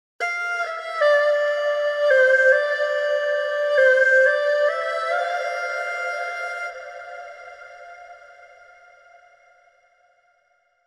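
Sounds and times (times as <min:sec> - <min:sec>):
erhu playing: 0:00.2 - 0:08.9.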